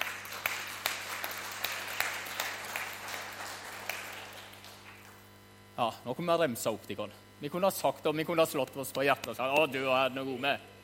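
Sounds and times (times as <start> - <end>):
crowd applauding: 0.0 - 5.2
speech: 5.8 - 10.7.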